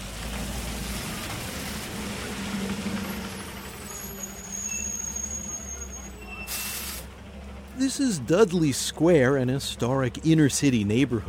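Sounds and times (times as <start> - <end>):
heavy buses idling at a large outdoor bus depot: 0.0 - 11.2
bus air-brake hiss: 4.3 - 7.1
speech: 7.8 - 11.2.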